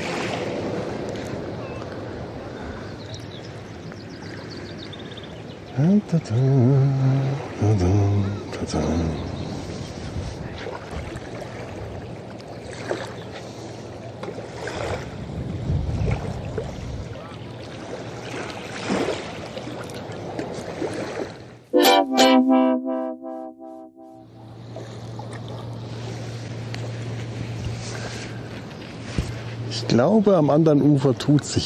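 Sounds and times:
small waves lapping against a boat: 0:00.0 - 0:21.7, 0:24.6 - 0:31.6
speech: 0:05.8 - 0:09.3, 0:30.0 - 0:31.6
brief tonal voice-like sound: 0:21.8 - 0:24.3.

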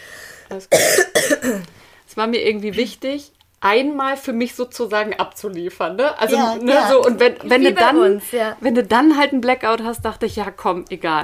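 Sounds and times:
throaty intake of breath: 0:00.0 - 0:00.5
speech: 0:00.5 - 0:11.2
harsh coughs: 0:00.7 - 0:01.7.

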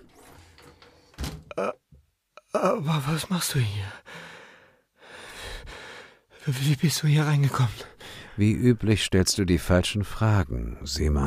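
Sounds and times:
door swinging shut with a heavy thud: 0:01.1 - 0:01.5
speech: 0:01.6 - 0:01.8, 0:02.6 - 0:04.1, 0:06.5 - 0:11.2.

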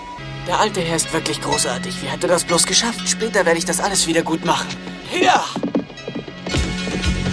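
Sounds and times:
speech: 0:00.5 - 0:05.8
horse galloping away with rider: 0:04.4 - 0:07.3.

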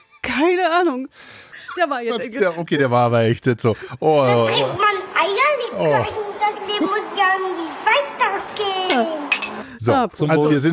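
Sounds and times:
speech: 0:00.4 - 0:04.9, 0:05.7 - 0:08.2, 0:08.9 - 0:10.7
laughter: 0:01.5 - 0:05.0
glasses clinking in a toast: 0:08.9 - 0:09.8.

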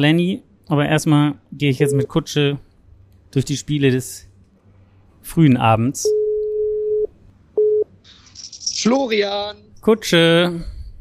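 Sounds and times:
speech: 0:00.0 - 0:02.7, 0:03.3 - 0:04.3, 0:05.2 - 0:06.2, 0:08.8 - 0:10.7
telephone line tone while placing a call: 0:06.1 - 0:07.9.

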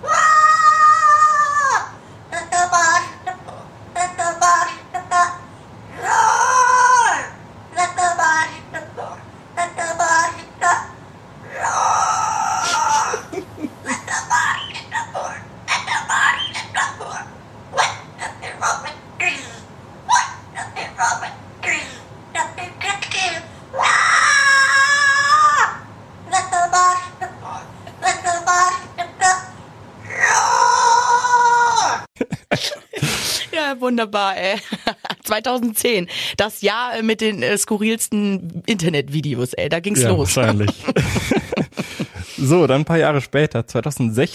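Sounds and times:
parrot squawking rock song lyrics: 0:00.0 - 0:05.4, 0:06.0 - 0:11.0, 0:13.8 - 0:32.0
laughter: 0:12.6 - 0:14.0, 0:32.2 - 0:33.4, 0:34.6 - 0:35.2, 0:40.0 - 0:42.4
speech: 0:33.9 - 0:41.4, 0:42.4 - 0:44.3.

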